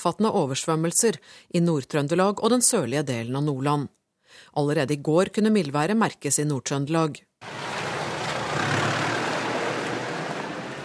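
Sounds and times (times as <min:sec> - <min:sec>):
speech: 0:00.0 - 0:07.6
broadband road noise: 0:07.4 - 0:10.8
heavy diesel truck engine hauling away snow: 0:07.4 - 0:10.8.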